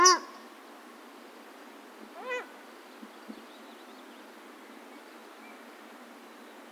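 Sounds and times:
paradise shelduck nasal calls: 0:00.0 - 0:00.3
background hiss: 0:00.0 - 0:06.6.

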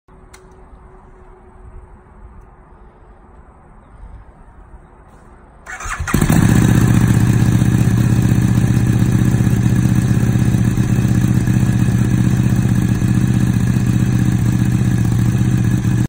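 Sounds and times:
RC model exhaust: 0:05.7 - 0:16.0.

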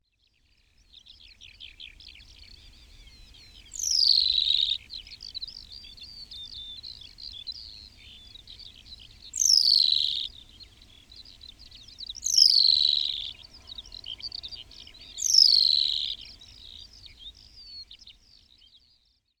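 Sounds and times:
New Zealand pipit calling: 0:03.8 - 0:17.3.

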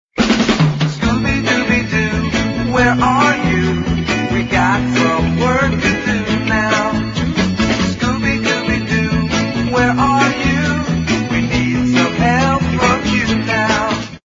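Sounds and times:
childish ringtone: 0:01.0 - 0:14.0.

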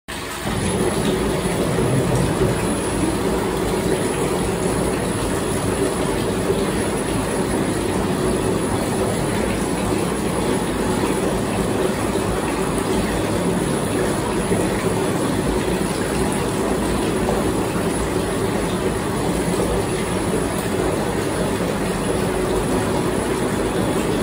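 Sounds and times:
Jacuzzi water: 0:00.1 - 0:24.2.

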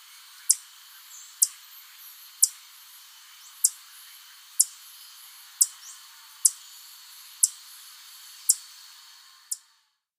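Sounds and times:
faint steady high hiss: 0:00.0 - 0:10.1
Black jacobin high thin ticking calls: 0:00.3 - 0:02.7, 0:03.3 - 0:07.7, 0:08.4 - 0:08.7.

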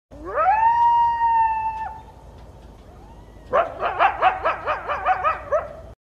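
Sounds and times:
coyote howling: 0:00.1 - 0:02.1, 0:02.9 - 0:05.7.

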